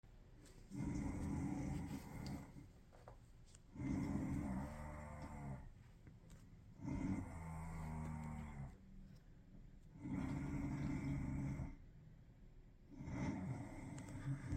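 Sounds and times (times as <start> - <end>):
rat snoring: 0.7 - 2.8, 3.7 - 5.7, 6.7 - 8.8, 9.8 - 11.9, 12.9 - 14.5.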